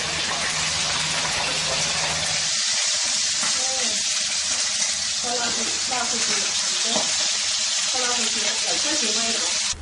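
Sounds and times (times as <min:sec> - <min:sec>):
food sizzling and crackling in hot oil in a Chinese household kitchen: 0:00.0 - 0:09.8.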